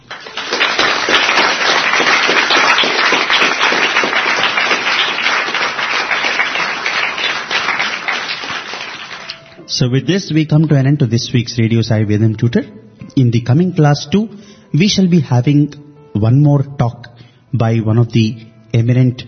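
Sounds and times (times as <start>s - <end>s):
crowd applauding: 0.0s - 9.6s
speech: 9.8s - 19.2s.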